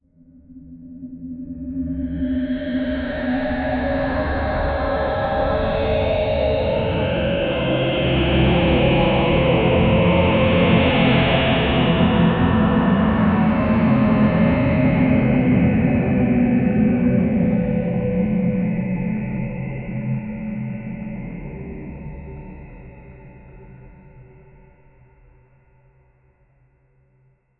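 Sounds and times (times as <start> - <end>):
ethereal ambient layers: 1.0 - 23.9.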